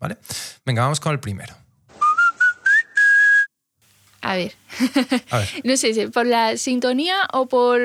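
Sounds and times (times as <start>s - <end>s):
speech: 0.0s - 1.6s, 4.2s - 7.8s
short whistled jingle melody: 2.0s - 3.5s
laughter: 4.7s - 5.7s.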